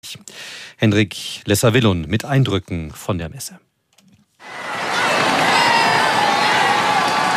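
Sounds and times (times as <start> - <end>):
speech: 0.1 - 3.7
large crowd of faithful and spectators on the Champs-Élysées in Paris cheering and shouting: 4.4 - 7.3.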